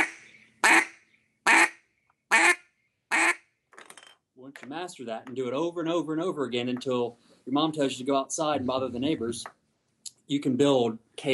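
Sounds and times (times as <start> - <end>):
single-reed power duck call quacks with notes cut off: 0.0 - 3.4
speech: 4.4 - 9.6, 10.3 - 11.3.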